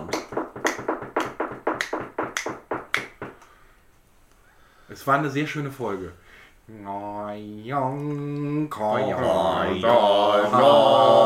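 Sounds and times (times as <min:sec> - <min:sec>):
knuckles rapping on a table in academic applause: 0:00.0 - 0:03.4
speech: 0:05.0 - 0:11.2.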